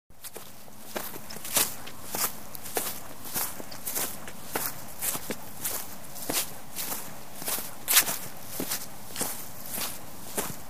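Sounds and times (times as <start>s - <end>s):
footsteps on grass outdoors: 0.2s - 10.6s.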